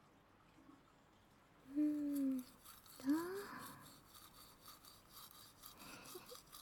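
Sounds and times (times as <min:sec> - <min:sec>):
toothbrush scrubbing lower teeth: 0:01.8 - 0:06.6.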